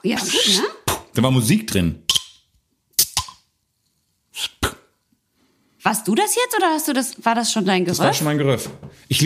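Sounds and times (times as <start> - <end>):
speech: 0.0 - 2.0, 5.8 - 9.2
beer bottle being opened, cap popping: 2.1 - 3.5.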